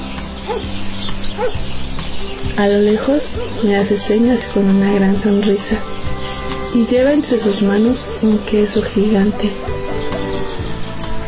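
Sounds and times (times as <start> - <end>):
dog barking: 0.5 - 0.7, 1.4 - 1.6, 3.2 - 3.6, 7.9 - 8.9
speech: 0.5 - 9.9.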